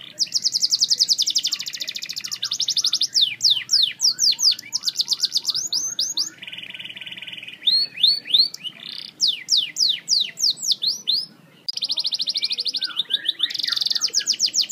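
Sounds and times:
canary song: 0.0 - 14.7.

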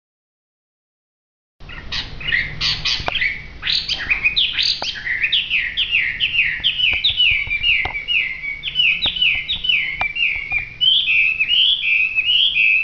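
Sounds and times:
hwamei in full song: 3.2 - 12.8.

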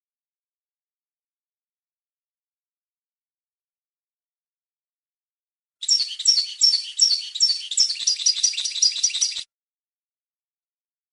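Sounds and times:
European goldfinch singing: 5.8 - 9.5.

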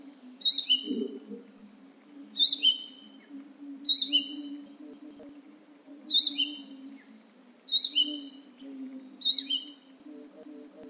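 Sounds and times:
Crimson sunbird high-pitched falling chirp calls: 0.0 - 1.1, 2.4 - 4.6, 6.1 - 7.1, 7.7 - 9.9
low steady hum: 0.0 - 10.8.

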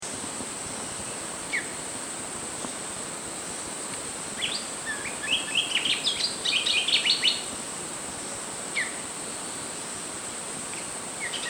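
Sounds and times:
steady background hiss: 0.0 - 11.4
flycatcher giving sharp chirps and hurried twittering: 4.4 - 7.5, 11.2 - 11.4.

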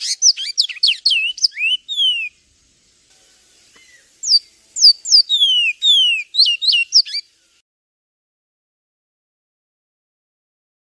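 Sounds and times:
Javan tesia song phrase: 0.0 - 2.5, 3.2 - 7.6.

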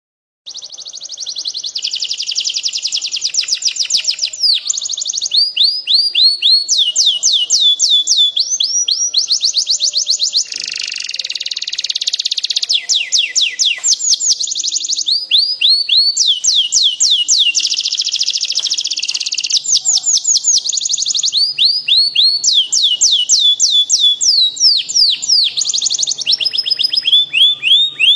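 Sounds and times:
standard canary chirping: 0.5 - 28.1.

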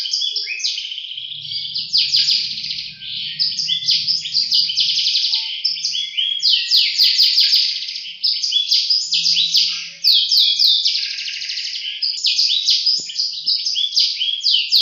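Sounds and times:
Atlantic canary singing: 0.0 - 14.8
faint low hum: 1.0 - 7.1.

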